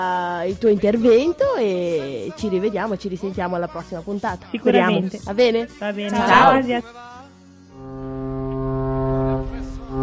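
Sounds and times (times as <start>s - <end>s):
speech: 0.0s - 7.1s
ship's horn signalling arrival: 7.8s - 10.0s.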